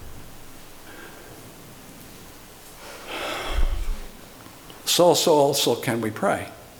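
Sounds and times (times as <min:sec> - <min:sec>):
soft hiss: 0:00.0 - 0:06.7
person breathing in and out deliberately: 0:02.8 - 0:04.2
speech: 0:05.0 - 0:06.6.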